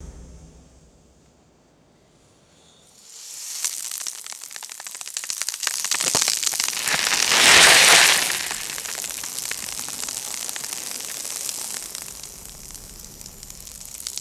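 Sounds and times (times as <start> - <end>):
rocky debris scattering: 3.0 - 14.1
rope falling: 3.1 - 12.4.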